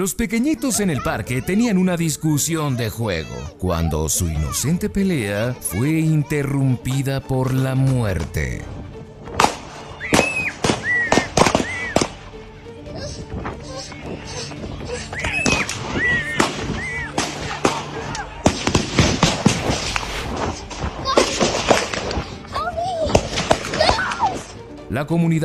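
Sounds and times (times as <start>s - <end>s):
speech: 0.0s - 8.9s, 25.1s - 25.4s
rapid exchange of gunfire: 9.3s - 12.2s, 15.4s - 22.3s, 23.1s - 24.1s
high chirping sounds: 13.7s - 17.1s.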